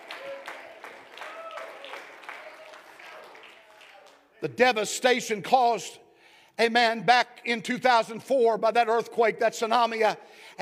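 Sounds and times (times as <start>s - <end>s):
audience clapping hands: 0.0s - 4.4s
speech: 4.4s - 6.0s, 6.6s - 10.6s.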